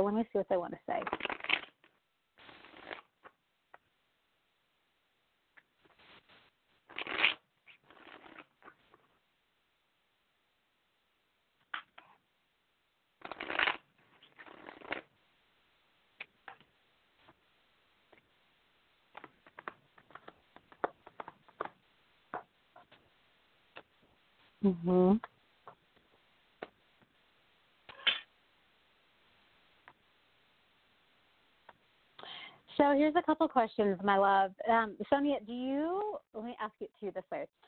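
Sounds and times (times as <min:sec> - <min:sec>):
speech: 0:00.0 - 0:01.6, 0:24.7 - 0:25.3, 0:33.1 - 0:37.6
deck of cards being shuffled: 0:01.0 - 0:01.9, 0:06.9 - 0:09.0, 0:13.2 - 0:15.0, 0:19.1 - 0:21.8.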